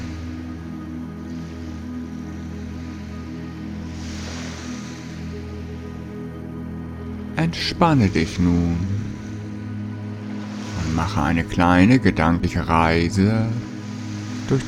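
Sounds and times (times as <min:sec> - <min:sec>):
soft ocean waves washing onto a beach: 0:00.0 - 0:14.6
steady low sustained musical drone: 0:00.0 - 0:14.6
speech: 0:07.5 - 0:09.0, 0:11.0 - 0:13.7, 0:14.5 - 0:14.6.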